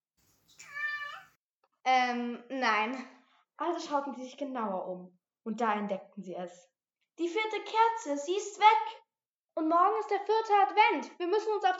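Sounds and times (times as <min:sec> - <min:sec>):
cat meowing: 0:00.6 - 0:01.3
speech: 0:01.9 - 0:09.0, 0:09.6 - 0:11.7.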